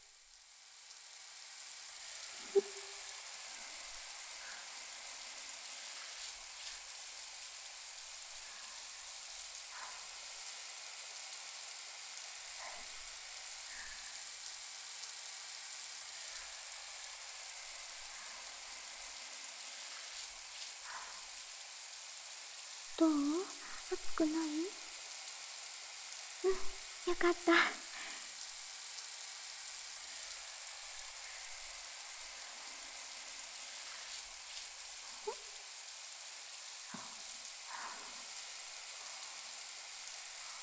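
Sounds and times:
shower water spraying with taps and drips: 0:00.0 - 0:40.6
speech: 0:02.5 - 0:02.8, 0:23.0 - 0:24.8, 0:26.5 - 0:27.8.

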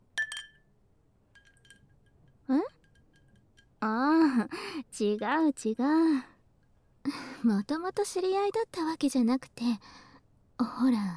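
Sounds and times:
glasses clinking together in a toast: 0:00.2 - 0:03.8
speech: 0:03.8 - 0:06.3, 0:07.4 - 0:10.0, 0:10.6 - 0:11.1.

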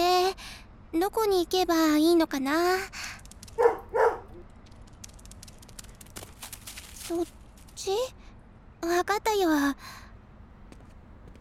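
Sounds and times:
speech: 0:00.9 - 0:04.0, 0:07.1 - 0:08.2, 0:08.8 - 0:10.0
dog barking: 0:03.6 - 0:04.4.

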